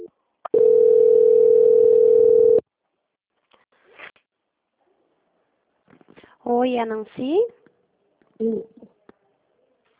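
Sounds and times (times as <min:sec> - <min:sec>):
telephone tone during a call transfer: 0:00.0 - 0:02.6
speech: 0:06.5 - 0:07.6, 0:08.4 - 0:08.9.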